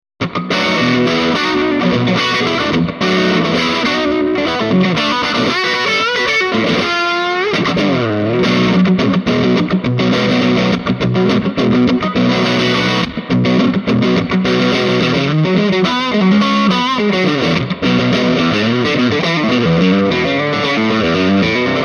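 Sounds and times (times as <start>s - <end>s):
Tele guitar grind through Swart Super Space Tone 30: 0.2s - 21.8s.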